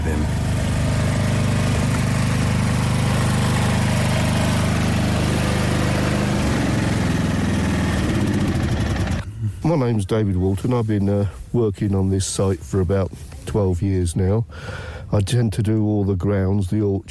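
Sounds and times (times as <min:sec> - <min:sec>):
mini tractor engine running: 0:00.0 - 0:09.3
speech: 0:09.7 - 0:17.0.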